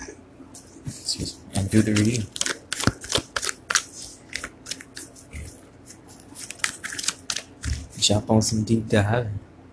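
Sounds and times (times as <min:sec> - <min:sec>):
speech: 0:01.2 - 0:02.4, 0:08.1 - 0:09.5
deck of tarot cards being shuffled for a reading: 0:01.6 - 0:08.0.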